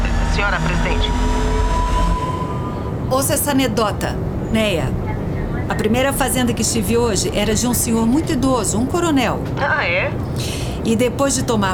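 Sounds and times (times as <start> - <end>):
faint whining tone of airplane engine: 0.0 - 8.8
airplane engine drone in cabin on a flight to Brasília: 0.0 - 11.1
speech: 3.1 - 5.0, 5.7 - 11.7.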